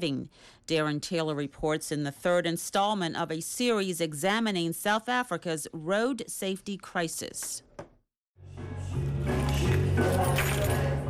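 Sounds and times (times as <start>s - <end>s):
speech: 0.0s - 7.7s
car keys tossed onto bar counter: 9.4s - 11.0s.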